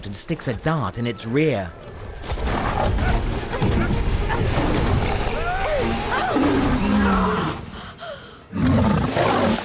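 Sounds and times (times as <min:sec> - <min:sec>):
speech: 0:00.0 - 0:04.9
lion roaring and snarling during an attack: 0:02.4 - 0:07.6, 0:08.6 - 0:09.6.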